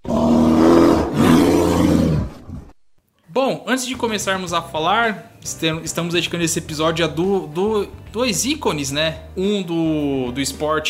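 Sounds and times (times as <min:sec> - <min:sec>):
roar sound effect: 0:00.0 - 0:02.8
speech: 0:03.4 - 0:10.8.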